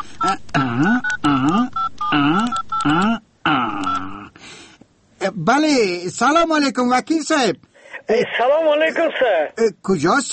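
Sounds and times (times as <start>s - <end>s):
telephone dialing tones: 0.0s - 3.0s, 3.7s - 4.2s
speech: 0.2s - 2.5s, 5.4s - 10.3s.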